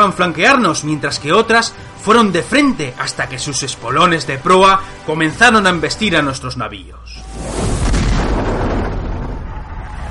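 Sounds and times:
speech: 0.0 - 7.6
heavy cannon fire in naval battle: 7.4 - 10.0.

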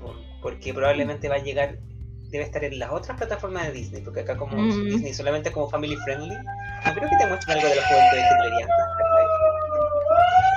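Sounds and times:
speech: 0.5 - 9.0
emergency vehicle siren wailing: 5.8 - 10.5.

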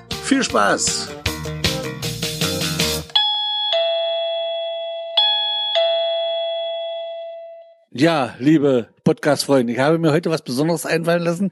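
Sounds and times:
speech: 0.3 - 1.6, 8.0 - 11.4
bakery shop door gong chime ringing: 3.1 - 7.9.

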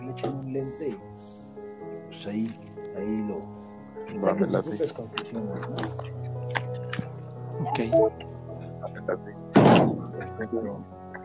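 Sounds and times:
speech: 0.2 - 1.4, 2.2 - 6.6, 7.7 - 8.3, 9.1 - 9.4, 10.4 - 11.0
door slamming shut: 9.6 - 10.2.

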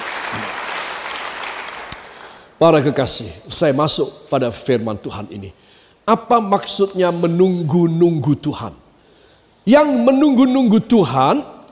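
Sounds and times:
congregation applauding: 0.0 - 2.4
speech: 2.6 - 8.8, 9.6 - 11.5.

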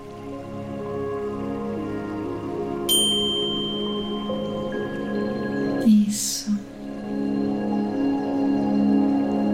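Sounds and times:
soft ambient wash: 0.0 - 9.5
meditation bell ringing: 2.9 - 5.8.

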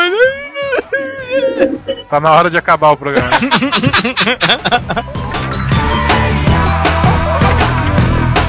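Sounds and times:
voice imitating a child crying and sucking: 0.0 - 2.0
laughter: 0.0 - 2.1, 3.1 - 5.2, 6.9 - 8.3
speech: 2.1 - 5.7.

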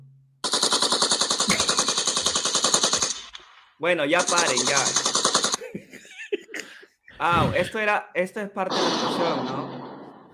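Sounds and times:
automatic gunfire burst: 0.4 - 3.4, 4.1 - 5.6
speech: 3.8 - 5.1, 5.7 - 6.0, 7.2 - 9.8
laughter: 5.6 - 7.7.

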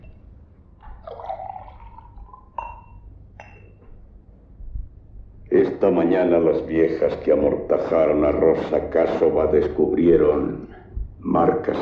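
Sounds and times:
brandy being poured into a glass: 0.8 - 3.6
light glass clinks: 2.6 - 3.8
speech: 5.6 - 11.8.

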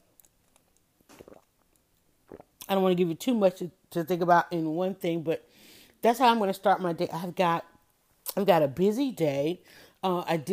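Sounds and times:
person sipping a drink: 0.2 - 2.7
faint mouth clicks: 1.1 - 2.7
speech: 2.7 - 7.7, 8.3 - 10.5.

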